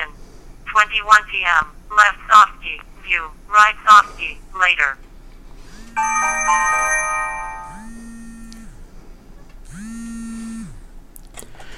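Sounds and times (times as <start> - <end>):
speech: 0.9 - 5.1, 6.0 - 7.2
phone default text message alert multi-tone chime: 6.0 - 8.2
phone buzzing vibration pulses: 7.6 - 8.9, 9.7 - 10.8.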